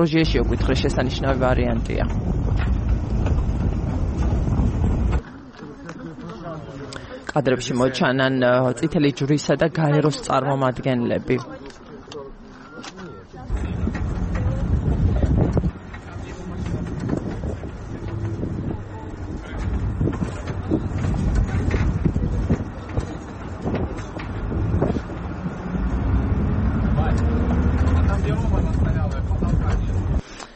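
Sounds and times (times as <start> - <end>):
speech: 0.0 - 3.5, 7.4 - 11.6
rushing wind through a bus with no window glass: 0.0 - 5.2, 13.5 - 30.3
bus with no window glass driving: 0.0 - 8.0, 12.0 - 30.5
indistinct voices: 0.0 - 30.2.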